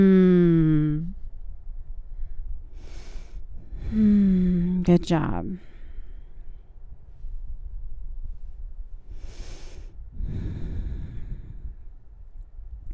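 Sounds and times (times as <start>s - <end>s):
speech: 0.0s - 0.2s, 4.8s - 5.7s
faint steady low rumble: 0.0s - 12.9s
deep breathing during a slow yoga stretching session: 2.0s - 4.7s, 5.6s - 12.3s.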